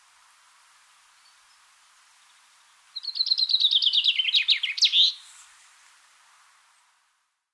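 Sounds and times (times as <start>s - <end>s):
faint background hiss: 0.0s - 7.5s
common chaffinch Fringilla coelebs song: 1.1s - 5.4s.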